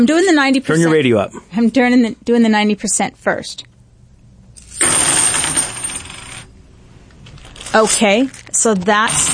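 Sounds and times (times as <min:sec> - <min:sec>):
speech: 0:00.0 - 0:03.7, 0:07.7 - 0:09.3
handful of silver half-dollar coins dropped onto a tabletop: 0:04.6 - 0:06.5, 0:07.3 - 0:09.3.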